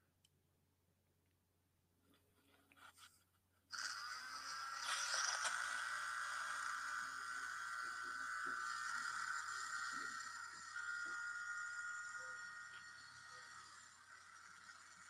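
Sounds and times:
blender motor running with whirring whine: 3.7s - 15.0s.

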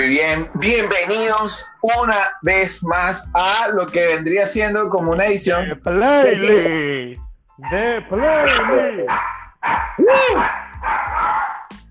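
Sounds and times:
speech: 0.1s - 11.0s
small dog barking and yelping: 8.5s - 11.7s.

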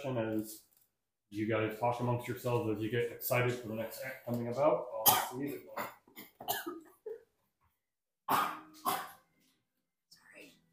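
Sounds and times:
speech: 0.0s - 0.7s, 1.3s - 6.8s
person coughing: 5.0s - 7.2s, 8.3s - 9.2s.

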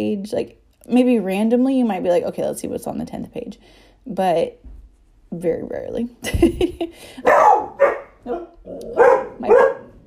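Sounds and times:
speech: 0.0s - 4.7s, 5.3s - 9.7s
puppies barking: 7.2s - 10.0s.

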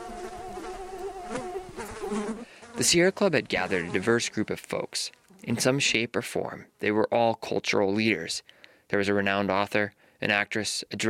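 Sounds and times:
mosquitoes buzzing: 0.0s - 3.0s
faint noise: 0.0s - 11.0s
speech: 2.8s - 11.0s.

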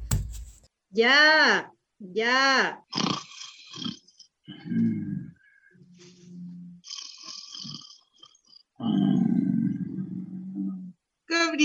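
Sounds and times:
speech: 0.9s - 3.1s
person snoring: 2.9s - 5.2s, 6.2s - 8.1s, 8.8s - 10.7s.

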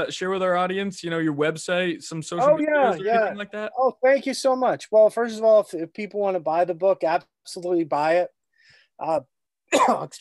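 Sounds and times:
speech: 0.0s - 8.4s, 9.0s - 10.1s
person coughing: 9.7s - 10.1s.

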